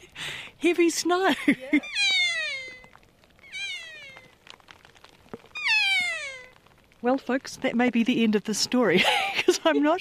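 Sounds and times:
speech: 0:00.6 - 0:02.1, 0:07.0 - 0:09.9
kea cries sliding downward in pitch in heavy snow: 0:01.8 - 0:04.4, 0:05.6 - 0:06.6.

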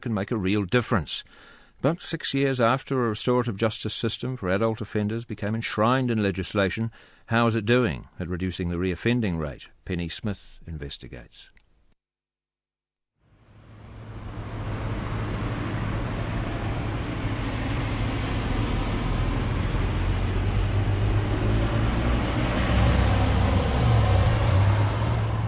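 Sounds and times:
speech: 0:00.0 - 0:11.6
traffic noise in an open-air car park: 0:13.3 - 0:25.4
car passing: 0:13.4 - 0:25.4
deep engine rumble: 0:13.4 - 0:25.4.

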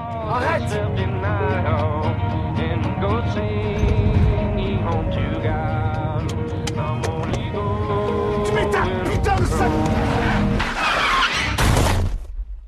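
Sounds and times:
music playing inside a car: 0:00.0 - 0:10.7
car driving: 0:03.4 - 0:11.7
voices inside a car: 0:08.4 - 0:10.6
car tires screeching in a loud rising skid before a crash: 0:09.5 - 0:11.7.

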